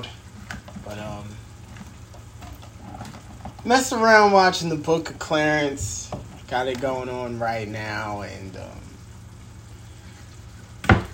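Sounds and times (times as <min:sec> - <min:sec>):
food sizzling in a heated pan: 0:00.0 - 0:11.1
speech: 0:03.6 - 0:08.8.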